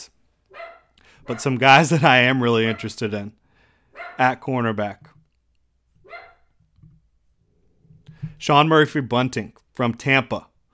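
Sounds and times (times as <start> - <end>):
dog barking sharply: 0.5 - 1.6, 2.7 - 3.0, 4.0 - 4.3, 6.0 - 6.5
speech: 1.3 - 3.4, 4.0 - 5.1, 8.4 - 10.5.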